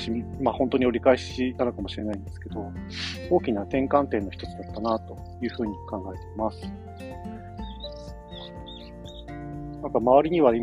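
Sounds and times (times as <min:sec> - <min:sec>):
speech: 0:00.0 - 0:06.8, 0:09.8 - 0:10.6
swallows chirping while flying around: 0:04.3 - 0:10.1.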